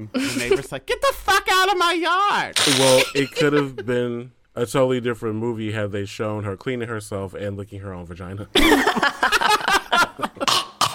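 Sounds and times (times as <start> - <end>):
speech: 0.0 - 10.6
person imitating a cat hacking up a hairball: 2.6 - 3.2, 10.4 - 10.9
laughter: 2.7 - 4.2, 8.6 - 10.5.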